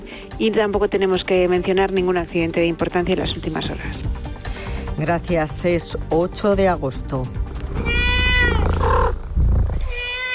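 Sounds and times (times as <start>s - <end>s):
speech: 0.4s - 4.1s, 5.0s - 7.9s
cat meowing: 7.6s - 10.3s.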